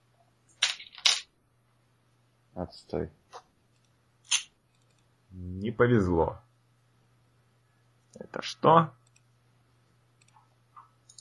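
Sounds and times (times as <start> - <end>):
percentile dice rolled onto a tabletop: 0.6 - 1.3
speech: 2.6 - 3.2, 5.4 - 6.4, 8.4 - 9.0.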